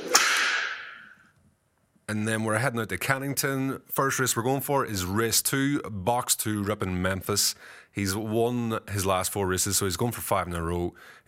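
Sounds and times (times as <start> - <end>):
sharp whip crack with bright hissing tail: 0.0 - 1.1
speech: 2.1 - 11.2.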